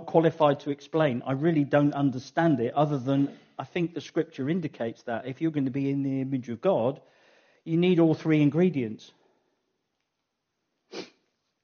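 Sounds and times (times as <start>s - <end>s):
speech: 0.1s - 9.2s
single sharp breathy sniff: 10.9s - 11.4s.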